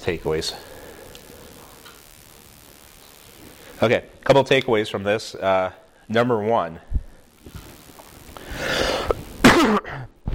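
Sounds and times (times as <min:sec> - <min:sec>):
speech: 0:00.0 - 0:00.8, 0:03.8 - 0:06.9
person coughing during a group Bible study: 0:09.4 - 0:10.2.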